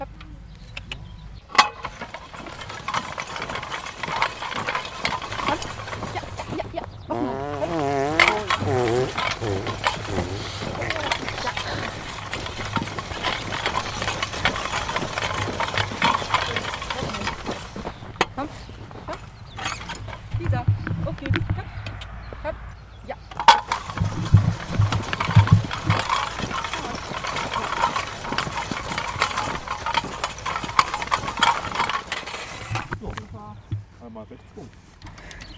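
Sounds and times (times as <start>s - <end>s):
creaks of a horse-drawn farm implement: 0.0s - 22.5s, 23.3s - 33.9s
farm implement drawn by a horse scraping and rattling across a field: 0.0s - 35.5s
flies buzzing in the open air: 6.6s - 10.9s.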